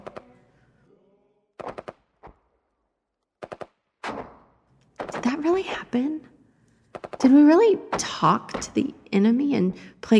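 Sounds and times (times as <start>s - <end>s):
loud gunshots: 1.6s - 2.1s, 3.4s - 5.3s
speech: 5.2s - 6.3s, 7.2s - 10.1s.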